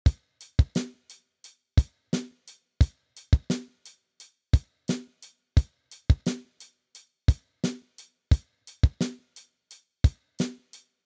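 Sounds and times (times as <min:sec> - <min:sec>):
naked drum: 0:00.1 - 0:10.9.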